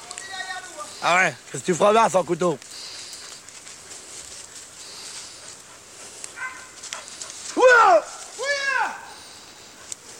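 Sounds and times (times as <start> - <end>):
steady outdoor hiss: 0.0 - 10.1
speech: 1.0 - 2.7
hunting dogs barking: 2.7 - 10.1.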